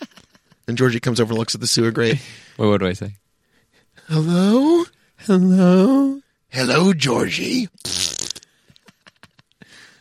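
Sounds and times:
speech: 0:00.7 - 0:03.2, 0:04.0 - 0:07.9
mouth-made fart noise: 0:07.8 - 0:08.5.

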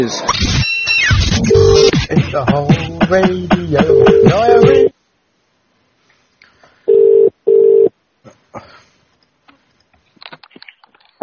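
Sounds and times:
speech: 0:00.0 - 0:00.5, 0:01.5 - 0:04.9
telephone ringback tone on a call from a live radio show: 0:01.5 - 0:01.9, 0:06.9 - 0:07.9.

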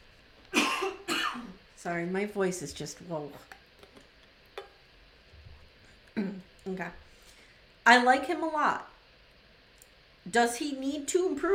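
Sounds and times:
harsh cough: 0:00.6 - 0:01.6
speech: 0:01.8 - 0:03.6, 0:06.7 - 0:07.1, 0:07.9 - 0:08.9, 0:10.3 - 0:11.5.

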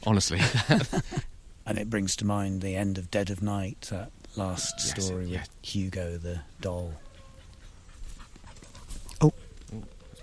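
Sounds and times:
speech: 0:00.0 - 0:07.0, 0:09.2 - 0:10.0
laughter: 0:00.4 - 0:01.3
dog panting and whimpering: 0:07.1 - 0:09.1.

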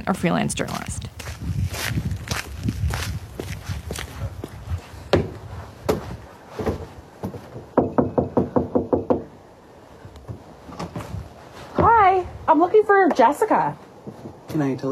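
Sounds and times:
speech: 0:00.0 - 0:01.0, 0:13.1 - 0:13.8, 0:14.6 - 0:14.9
footsteps thudding: 0:00.7 - 0:07.7, 0:10.3 - 0:12.1
knocking on a wooden house front door: 0:06.7 - 0:09.3.

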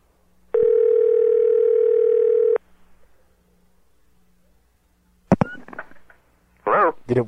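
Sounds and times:
quiet telephone line hiss: 0:00.0 - 0:07.2
telephone ringing tone after dialing to call back the last caller: 0:00.5 - 0:02.6
speech: 0:07.1 - 0:07.2.

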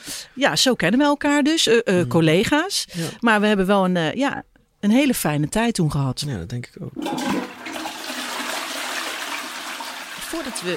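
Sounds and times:
speech: 0:00.4 - 0:07.6, 0:10.3 - 0:10.7
toilet flushing in the neighbouring building: 0:07.0 - 0:10.7
water gurgling through sewer pipes: 0:07.0 - 0:10.7.

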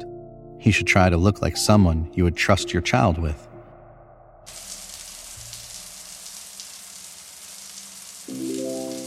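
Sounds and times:
speech: 0:00.6 - 0:03.5
hot shower water spraying: 0:04.5 - 0:09.0.

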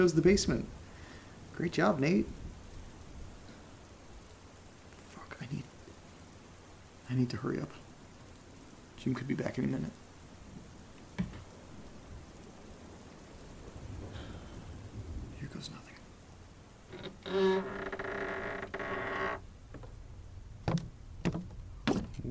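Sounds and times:
speech: 0:00.0 - 0:00.8, 0:01.6 - 0:02.4, 0:07.1 - 0:07.8, 0:09.0 - 0:10.0
steady rain: 0:00.0 - 0:22.2
wooden staircase creaking: 0:16.9 - 0:20.0, 0:20.6 - 0:22.2
sharp knocks: 0:20.6 - 0:22.2.

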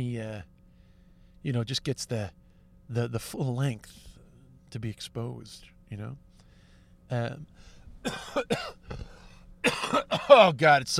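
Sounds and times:
speech: 0:01.4 - 0:04.1, 0:04.7 - 0:06.3, 0:07.1 - 0:10.9
throat clearing: 0:08.0 - 0:10.4
phlegmy coughing: 0:08.0 - 0:10.5.

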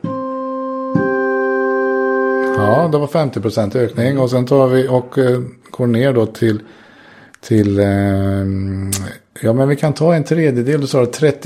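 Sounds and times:
two sustained instrument tones forming a perfect fifth: 0:00.0 - 0:02.9
speech: 0:02.6 - 0:06.8, 0:07.4 - 0:11.4.

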